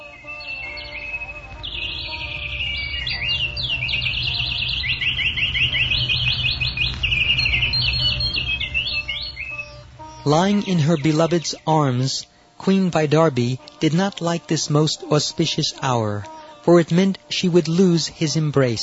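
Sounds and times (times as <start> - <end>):
loud busy chorus of birds singing at dawn: 0.0 - 18.8
low steady rumble: 0.9 - 12.4
speech: 10.3 - 18.8.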